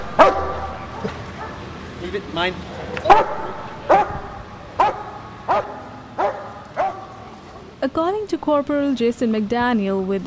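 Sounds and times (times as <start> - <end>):
police dog barking over its toy: 0.1 - 0.8, 3.1 - 7.3
speech: 2.1 - 4.0, 7.8 - 10.2.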